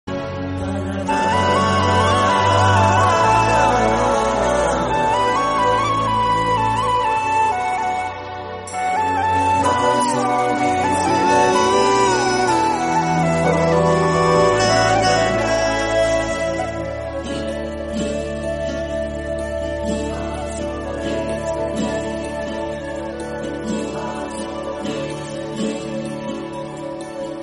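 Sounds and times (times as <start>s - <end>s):
flute instrumental: 0.1s - 27.4s.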